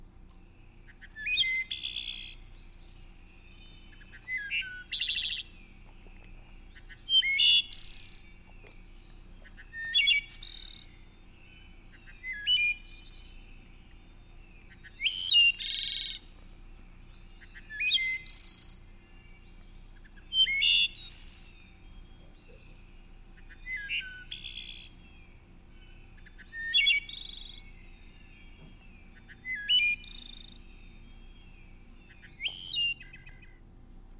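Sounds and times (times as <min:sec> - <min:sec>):
faint hum: 0:00.0 - 0:34.1
wood thrush singing flute-like phrases: 0:00.0 - 0:34.1.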